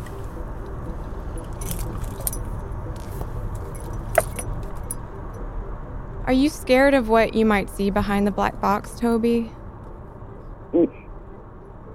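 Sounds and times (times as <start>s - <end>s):
steady low car rumble: 0.0s - 11.9s
keys jingling: 1.4s - 5.0s
speech: 6.3s - 9.6s, 10.7s - 11.0s.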